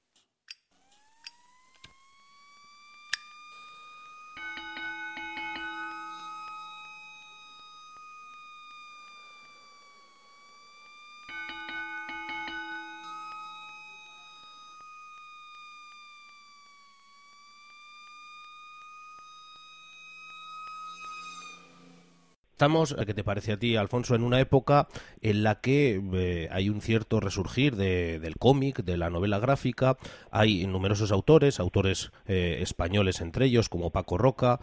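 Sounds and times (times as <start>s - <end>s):
alarm siren wailing: 0.9s - 22.4s
speech: 22.6s - 34.6s.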